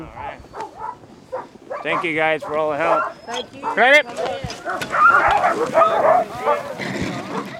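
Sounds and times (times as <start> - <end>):
sled dog team barking and yipping at a checkpoint: 0.1 - 7.5
speech: 1.8 - 7.0.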